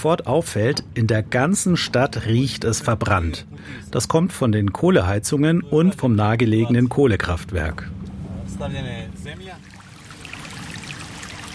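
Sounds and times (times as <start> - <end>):
speech: 0.0 - 8.0, 8.6 - 9.7
small brook flowing past meadows outside Pljevlja, Montenegro: 9.5 - 11.5.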